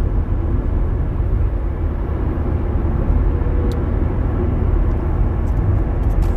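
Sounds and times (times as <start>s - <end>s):
big commuter bus engine droning: 0.0s - 6.3s.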